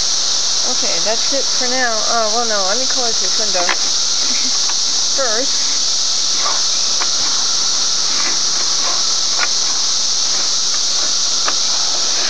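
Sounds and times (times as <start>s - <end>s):
cicadas singing in a loud hissing drone: 0.0s - 12.2s
speech: 0.8s - 4.5s, 5.2s - 5.7s
faint clicks and ticks: 2.4s - 5.6s, 6.3s - 12.2s.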